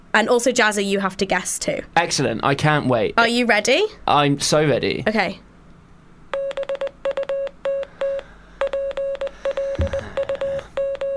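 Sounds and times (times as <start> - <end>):
speech: 0.1 - 5.4
Morse code beeps: 6.4 - 11.1.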